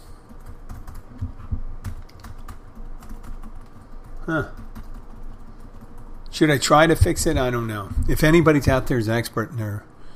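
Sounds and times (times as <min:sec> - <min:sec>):
low hum: 0:00.0 - 0:10.1
laptop control function and alt keys clicking: 0:00.2 - 0:06.3
speech: 0:04.3 - 0:04.6, 0:06.4 - 0:09.9.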